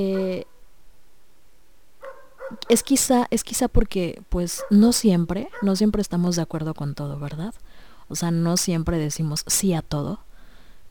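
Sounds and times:
speech: 0:00.0 - 0:00.5, 0:02.7 - 0:10.3
dog giving short sharp barks: 0:02.0 - 0:02.7, 0:04.6 - 0:04.8, 0:05.5 - 0:05.8.

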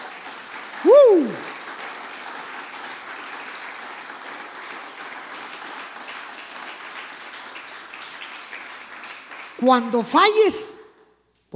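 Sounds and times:
audience applause: 0:00.0 - 0:10.0
person cheering: 0:00.8 - 0:01.5
speech: 0:00.8 - 0:01.5, 0:09.6 - 0:10.8.

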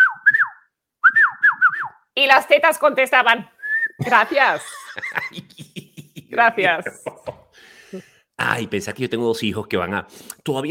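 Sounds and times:
person whistling a catcall with sliding swooping notes: 0:00.0 - 0:02.0, 0:03.6 - 0:04.0
speech: 0:02.2 - 0:05.4, 0:06.4 - 0:10.7
laughter: 0:04.0 - 0:07.6.

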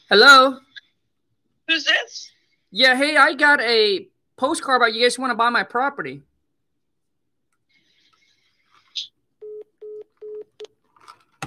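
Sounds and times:
speech: 0:00.1 - 0:00.6, 0:01.7 - 0:06.3
telephone keypad dialing tones: 0:09.4 - 0:10.6.

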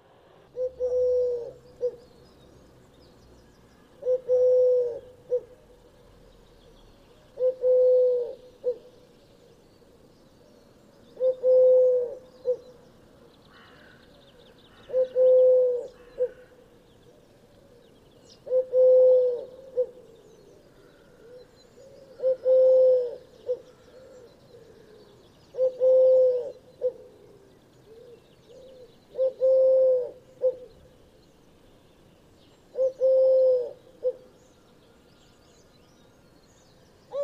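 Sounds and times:
collared dove cooing: 0:00.5 - 0:02.1, 0:04.0 - 0:05.8, 0:07.3 - 0:09.0, 0:11.2 - 0:12.8, 0:14.8 - 0:17.8, 0:18.4 - 0:30.9, 0:32.7 - 0:34.4.

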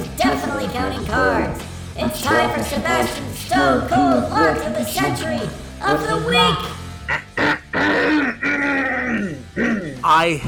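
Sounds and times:
speech: 0:00.2 - 0:07.2, 0:10.0 - 0:10.4
person clearing throat: 0:07.1 - 0:10.4.

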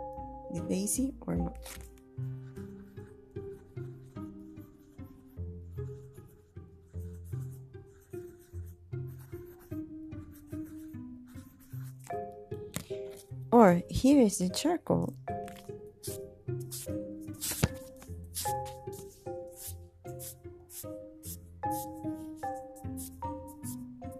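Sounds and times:
speech: 0:00.5 - 0:02.6, 0:13.6 - 0:15.2
pencil scratching across a small piece of paper: 0:01.5 - 0:12.2, 0:15.6 - 0:24.1.

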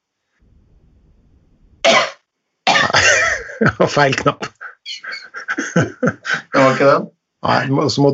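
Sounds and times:
person coughing into elbow toward a desk: 0:01.9 - 0:06.9
laughter: 0:03.0 - 0:07.0
speech: 0:03.6 - 0:04.5, 0:05.8 - 0:08.1.

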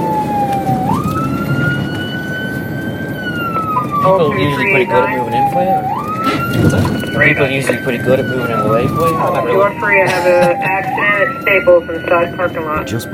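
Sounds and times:
police car siren wailing while driving to a call: 0:00.0 - 0:13.1
road noise from the moving car: 0:00.0 - 0:13.1
speech: 0:04.0 - 0:13.1.

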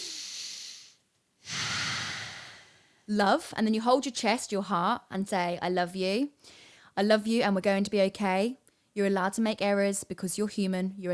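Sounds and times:
person taking a deep breath during a guided calming exercise: 0:00.0 - 0:03.1
speech: 0:03.1 - 0:11.1.

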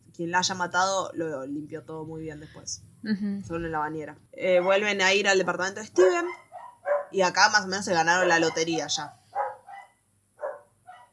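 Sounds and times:
speech: 0:00.2 - 0:06.4, 0:07.1 - 0:09.2
small dogs barking with sharp high yaps: 0:06.0 - 0:07.2, 0:08.2 - 0:11.1.

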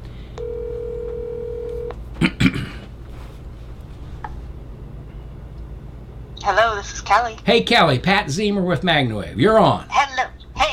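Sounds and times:
low hum: 0:00.0 - 0:10.7
electronic telephone ring tone of an outgoing call: 0:00.4 - 0:01.9
speech: 0:06.5 - 0:10.3.

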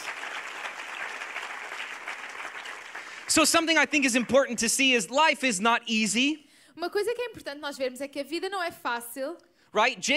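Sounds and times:
crowd applauding: 0:00.0 - 0:05.0
speech: 0:03.3 - 0:10.1.

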